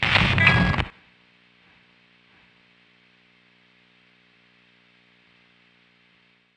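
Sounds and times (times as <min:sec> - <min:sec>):
guitar pickup: 0:00.0 - 0:00.9.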